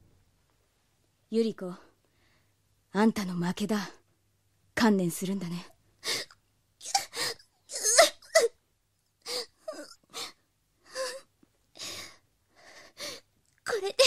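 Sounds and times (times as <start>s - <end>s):
speech: 1.3s - 1.9s, 2.9s - 4.0s, 4.8s - 5.7s
woman sobbing with gasping and wailing breaths: 6.0s - 8.6s, 9.2s - 11.3s.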